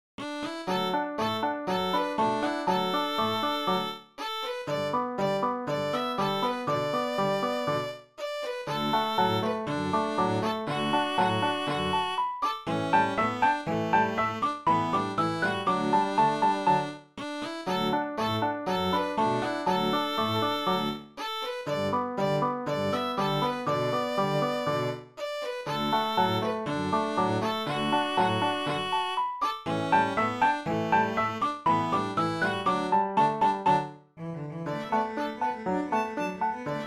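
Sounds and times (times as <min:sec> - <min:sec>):
piano trio playing: 0:00.2 - 0:04.0, 0:04.6 - 0:07.9, 0:08.7 - 0:24.9, 0:25.7 - 0:33.9, 0:34.7 - 0:36.8.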